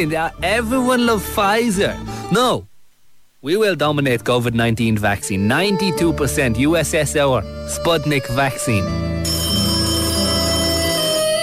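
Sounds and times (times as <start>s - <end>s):
speech: 0.0s - 2.7s, 3.4s - 9.4s
telephone ringing with a steady electronic tone: 9.1s - 11.4s.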